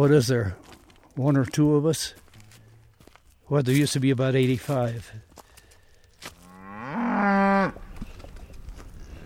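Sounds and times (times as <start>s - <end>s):
speech: 0.0s - 2.2s, 3.5s - 5.3s
cow mooing on a family cattle ranch: 6.4s - 7.8s.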